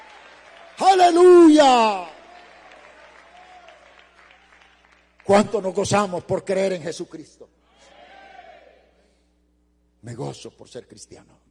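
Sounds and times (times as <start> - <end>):
church congregation clapping: 0.0 - 6.1
speech: 0.8 - 2.1, 5.3 - 7.6, 10.0 - 11.4.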